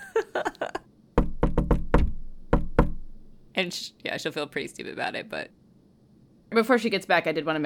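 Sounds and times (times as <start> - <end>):
sharp rhythmic coded knocking on a door: 1.2 - 3.4
speech: 3.6 - 5.6, 6.5 - 7.6.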